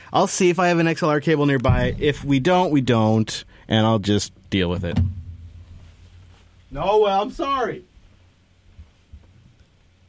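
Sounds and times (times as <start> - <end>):
white noise machine broadband hiss: 0.0 - 10.0
speech: 0.1 - 5.2, 6.7 - 7.9
soft low thumps: 1.6 - 6.8
low hum: 1.6 - 6.9.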